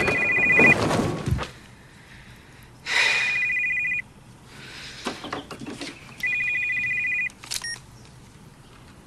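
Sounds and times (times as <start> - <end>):
telephone ringing: 0.0 - 0.8, 3.0 - 4.0, 6.2 - 7.8.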